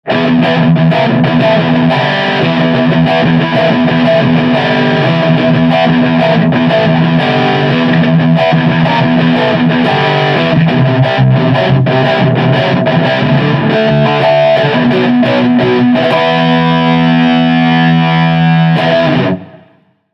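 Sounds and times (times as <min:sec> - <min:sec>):
overdriven electric guitar: 0:00.0 - 0:20.0.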